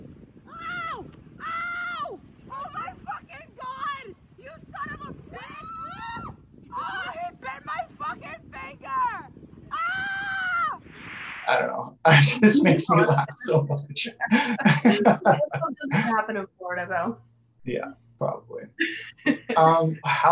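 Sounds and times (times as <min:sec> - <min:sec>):
wind rumbling on a beach: 0:00.0 - 0:20.2
woman on a beach screaming after an iguana bite: 0:00.5 - 0:04.1, 0:04.8 - 0:07.8, 0:08.8 - 0:10.8
laughter: 0:11.5 - 0:17.1, 0:17.7 - 0:20.2
speech: 0:11.5 - 0:20.2.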